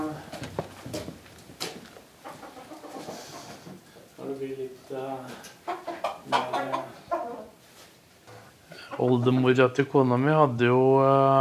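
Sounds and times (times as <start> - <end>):
bantam chickens clucking: 0.9 - 9.7
speech: 9.0 - 11.3.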